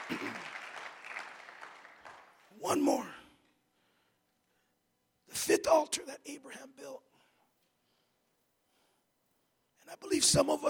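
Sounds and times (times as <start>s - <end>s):
congregation clapping hands in praise during a church service: 0.0s - 3.0s
speech: 2.6s - 3.2s, 5.8s - 7.1s, 9.9s - 10.6s.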